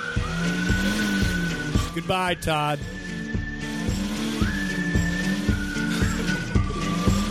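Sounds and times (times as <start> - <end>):
car engine revving: 0.0 - 7.2
speech: 2.0 - 3.0.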